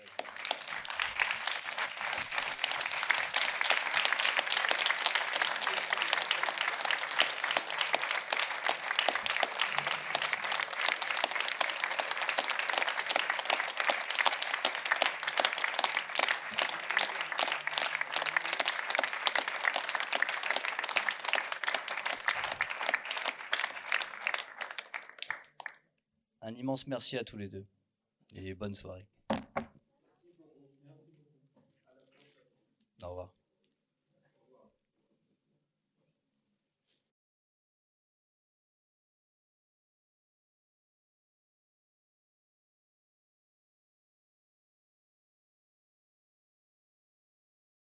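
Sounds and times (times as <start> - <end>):
applause from a large crowd: 0.0 - 25.8
speech: 26.6 - 27.8, 28.4 - 29.4.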